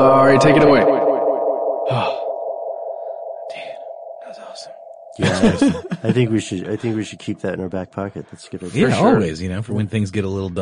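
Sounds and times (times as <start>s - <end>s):
speech: 0.0s - 1.0s, 5.2s - 10.5s
ringing tone with heavy reverb and delay from audio plugin effects: 0.0s - 8.0s
laughter: 5.2s - 10.5s.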